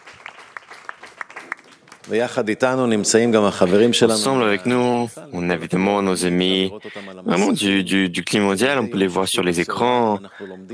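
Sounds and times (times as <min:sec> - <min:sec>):
scattered audience applause: 0:00.0 - 0:02.6
speech: 0:02.0 - 0:10.7.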